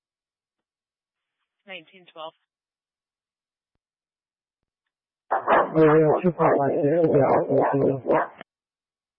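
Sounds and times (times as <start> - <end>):
speech: 1.7 - 2.5, 5.7 - 8.4
dog giving a short strained bark: 5.3 - 8.4.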